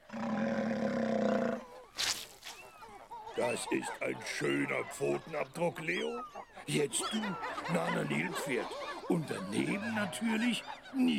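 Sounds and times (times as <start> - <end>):
lion roaring with a loud sustained rumbling growl: 0.0 - 1.6
laughter: 3.3 - 11.1
speech: 3.4 - 11.1.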